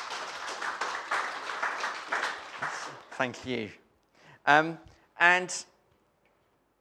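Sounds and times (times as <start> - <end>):
crowd of people applauding together: 0.0 - 3.5
speech: 3.2 - 3.8, 4.5 - 5.7.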